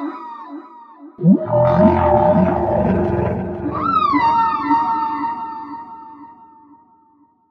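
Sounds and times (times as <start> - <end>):
whale song with upsweeps, cries, pulsed grunts and held tones: 1.2 - 5.8.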